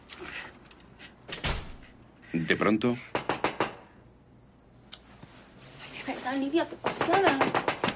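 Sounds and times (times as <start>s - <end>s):
door closing thud: 1.3s - 1.9s
speech: 2.3s - 3.2s, 6.3s - 7.7s
shuffle of movement: 5.2s - 6.7s.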